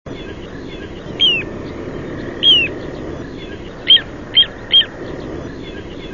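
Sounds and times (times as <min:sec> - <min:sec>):
little ringed plover whistling calls: 0:00.1 - 0:06.1.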